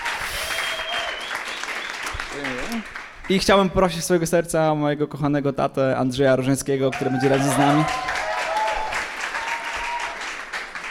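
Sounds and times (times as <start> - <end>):
audience applause: 0.0 - 3.2, 6.9 - 10.8
speech: 2.4 - 8.1.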